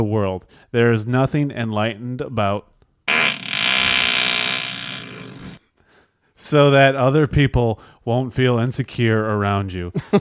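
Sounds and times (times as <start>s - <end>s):
speech: 0.0s - 2.7s, 6.4s - 10.1s
long loud raspy fart: 3.1s - 5.6s.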